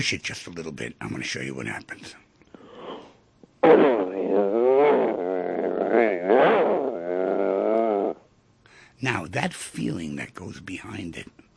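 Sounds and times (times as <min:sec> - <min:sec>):
speech: 0:00.0 - 0:02.2, 0:03.6 - 0:04.0, 0:09.0 - 0:11.4
breathy inhale: 0:02.5 - 0:03.2, 0:08.6 - 0:09.0
person growling like an aggressive dog: 0:03.6 - 0:08.2.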